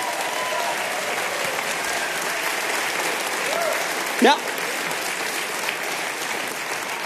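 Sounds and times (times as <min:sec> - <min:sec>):
audience applause for a performer taking a bow: 0:00.0 - 0:07.0
speech: 0:04.2 - 0:04.5.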